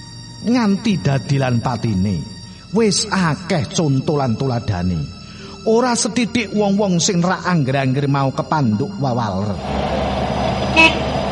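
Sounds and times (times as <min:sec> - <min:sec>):
speech: 0:00.4 - 0:10.2, 0:10.8 - 0:11.0
low traffic rumble: 0:09.5 - 0:11.2
car horn honking behind a motorcycle rider: 0:10.7 - 0:11.2.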